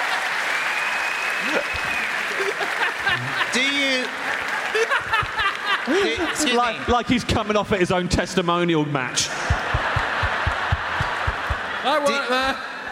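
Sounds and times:
hand clapping: 0.0 - 6.0, 9.5 - 11.7
whistle-like cheer: 0.4 - 2.5
speech: 1.4 - 9.5, 11.8 - 12.7
laughter: 1.5 - 6.9, 9.3 - 12.8.

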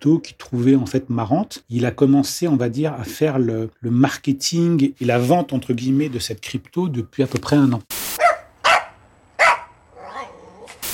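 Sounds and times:
speech: 0.0 - 8.0
dog barking: 8.2 - 10.5.

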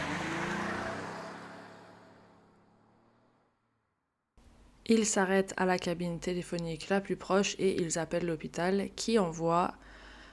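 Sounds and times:
car engine roaring as the car speeds off: 0.0 - 3.9
speech: 4.9 - 10.0.

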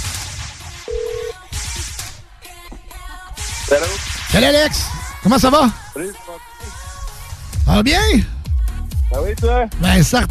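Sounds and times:
steady hiss of noise: 0.0 - 7.5
short clear electronic telephone beep: 0.9 - 1.4
speech: 3.7 - 6.4, 7.7 - 8.3, 9.1 - 10.2.

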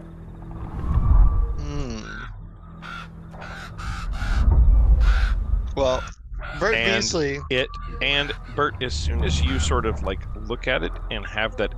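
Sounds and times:
low rumbling background: 0.0 - 11.7
raven cawing in harsh irregular bursts: 2.0 - 6.6
speech: 5.8 - 11.7.

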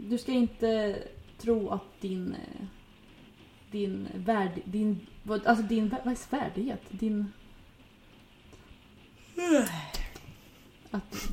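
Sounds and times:
speech: 0.1 - 2.8, 3.7 - 7.4, 9.4 - 10.0, 10.9 - 11.3
person yawning: 9.3 - 10.1.

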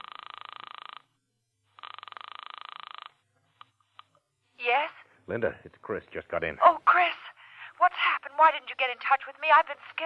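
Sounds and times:
telephone ringing on the line after dialing a coin payphone: 0.0 - 4.0
speech: 5.3 - 7.2, 8.4 - 10.0.

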